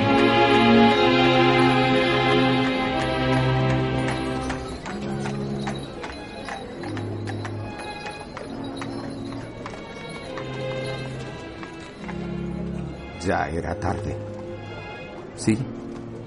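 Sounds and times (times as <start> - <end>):
horse hooves clip-clopping on a hard street, horse-drawn tram: 0.1 - 12.9, 15.7 - 16.2
speech: 13.6 - 14.3, 15.5 - 15.8.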